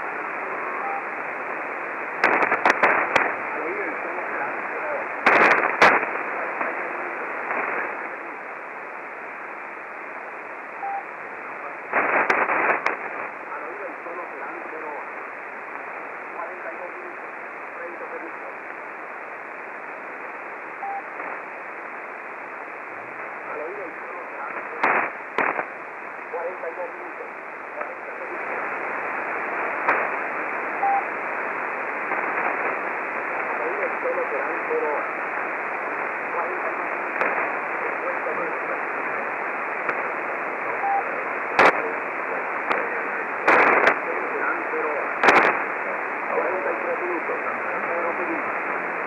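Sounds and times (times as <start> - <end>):
VLF radio time signals on 3810 kHz: 0.2 - 1.3, 2.0 - 8.3, 10.2 - 15.1, 20.5 - 21.5, 23.2 - 49.0.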